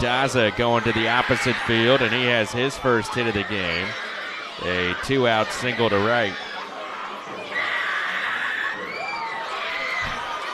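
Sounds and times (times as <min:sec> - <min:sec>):
speech: 0:00.0 - 0:06.4
crowd of children screaming at a team mascot at a baseball game: 0:00.0 - 0:10.5.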